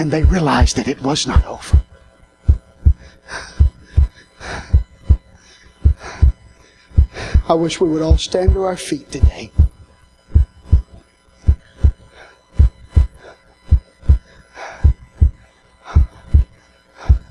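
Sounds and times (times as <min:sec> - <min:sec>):
speech: 0:00.0 - 0:01.9, 0:07.5 - 0:09.6
deep heartbeat with lub-dub double beats: 0:00.2 - 0:00.8, 0:01.4 - 0:01.9, 0:02.5 - 0:05.2, 0:05.8 - 0:06.4, 0:07.0 - 0:07.5, 0:08.1 - 0:08.6, 0:09.2 - 0:10.9, 0:11.5 - 0:12.0, 0:12.6 - 0:14.2, 0:14.8 - 0:16.5.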